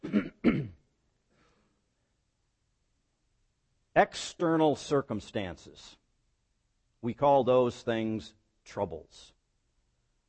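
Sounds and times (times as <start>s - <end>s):
person clearing throat: 0.0s - 0.9s
speech: 4.0s - 6.0s, 7.0s - 9.4s.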